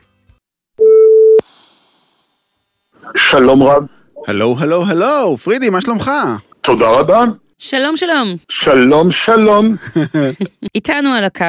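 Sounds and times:
telephone line tone while a call is placed: 0.8 - 1.5
speech: 3.3 - 11.4
laughter: 9.7 - 10.8.

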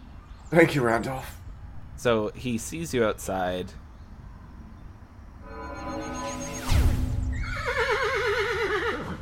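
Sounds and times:
faint steady noise: 0.0 - 9.2
speech: 0.5 - 1.4, 2.0 - 3.8
horse neighing: 7.3 - 9.2.

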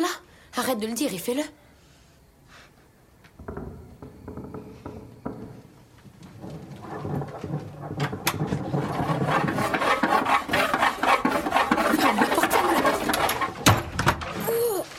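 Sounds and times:
speech: 0.6 - 1.6
rough rasping scraping on a wooden door: 3.4 - 14.4.

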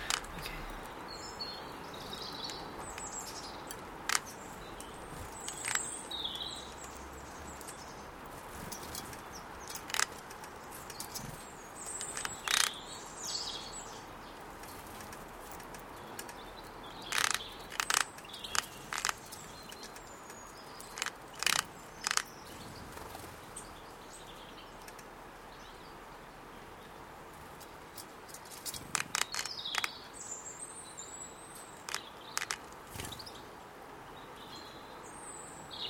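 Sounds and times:
sharp taps and clicks of birds pecking and shuffling: 0.0 - 1.0, 1.9 - 12.9, 14.3 - 23.3, 24.2 - 25.2, 27.3 - 30.1, 31.6 - 33.4
small birds chirping at a seed feeder: 0.0 - 35.8
steady outdoor hiss: 0.0 - 35.8.

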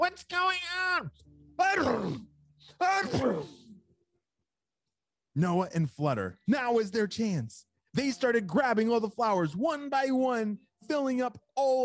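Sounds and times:
speech: 0.1 - 3.6, 5.4 - 11.8
person sneezing after smelling glitter-covered flowers: 1.8 - 3.8.

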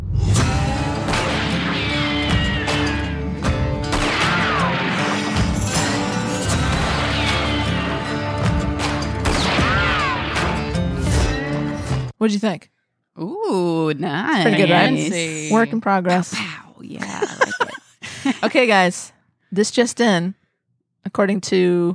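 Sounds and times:
gunshot sound effects: 0.3 - 3.0, 3.8 - 7.9, 8.8 - 11.3
twangy upbeat country music: 0.4 - 12.1, 14.4 - 16.2
speech: 12.2 - 20.4, 21.0 - 21.9
laughter: 14.5 - 15.7, 17.0 - 18.5.

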